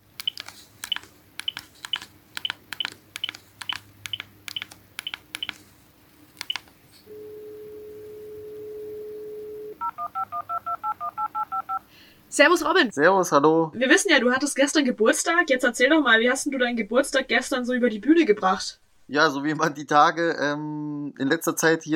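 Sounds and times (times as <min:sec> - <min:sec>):
telephone number keyed in as short sharp key beeps: 0:00.2 - 0:05.6, 0:06.4 - 0:07.3, 0:08.5 - 0:11.8
steady telephone tone: 0:06.5 - 0:11.9
speech: 0:12.4 - 0:21.9.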